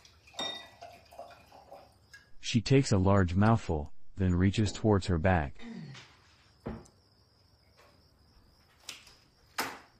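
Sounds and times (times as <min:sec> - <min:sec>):
white wine poured from a bottle into a glass: 0:00.2 - 0:02.3
glass clink: 0:00.3 - 0:01.3
speech: 0:02.5 - 0:05.7.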